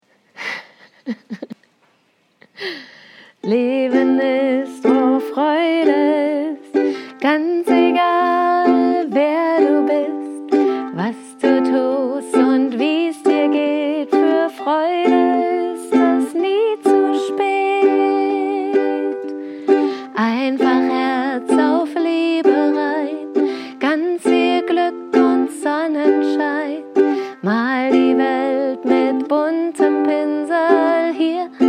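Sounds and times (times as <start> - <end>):
giggling: 0.4 - 1.7
song: 3.4 - 31.6.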